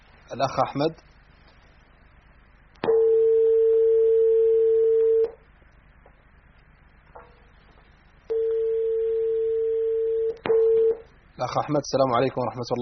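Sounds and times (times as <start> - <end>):
speech: 0.3 - 1.1, 11.4 - 12.8
telephone line tone after a dropped call: 2.9 - 5.4, 8.3 - 11.0.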